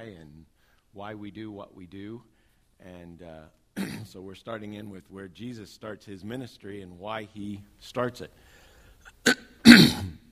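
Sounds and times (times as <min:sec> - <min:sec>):
speech: 0:01.0 - 0:09.4
person with a cold coughing: 0:03.8 - 0:04.1, 0:09.2 - 0:10.3.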